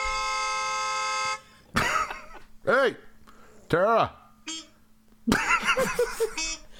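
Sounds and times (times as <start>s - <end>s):
loud car horn honking: 0.0s - 1.5s, 6.3s - 6.7s
laughter: 1.8s - 2.5s, 5.3s - 6.6s
speech: 2.7s - 3.1s, 3.7s - 4.6s, 5.3s - 6.6s.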